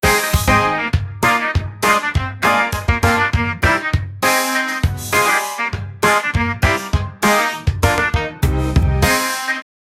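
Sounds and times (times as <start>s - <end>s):
funk phonk music: 0.0s - 9.6s.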